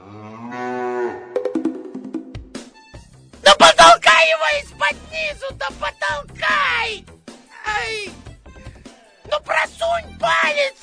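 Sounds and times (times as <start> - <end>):
cow mooing: 0.0 - 1.4
speech: 3.5 - 7.1, 7.7 - 8.2, 9.5 - 10.8.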